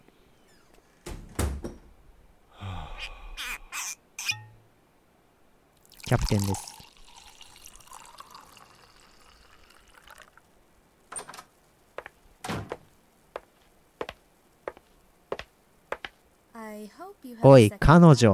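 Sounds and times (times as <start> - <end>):
door slamming shut with a heavy bang: 1.0 - 2.0, 12.4 - 12.8
running water: 5.8 - 10.6
speech: 6.1 - 6.7, 17.4 - 18.3.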